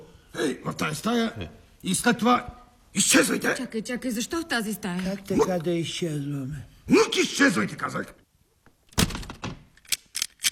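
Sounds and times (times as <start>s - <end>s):
speech: 0.4s - 8.2s
room door shut from inside with a heavy thump and rattle: 8.9s - 9.7s.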